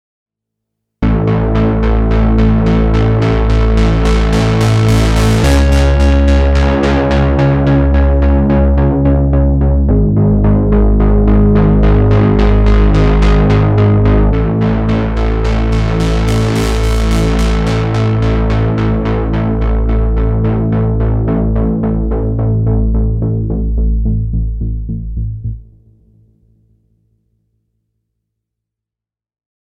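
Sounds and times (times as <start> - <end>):
SH-4d synth bass modelled on SH-3d: 1.0 - 26.1.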